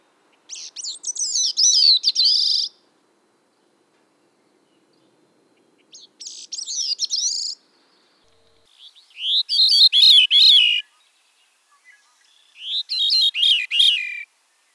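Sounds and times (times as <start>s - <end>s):
veery songs with downward-spiraling phrases: 8.8s - 10.8s, 12.6s - 14.3s.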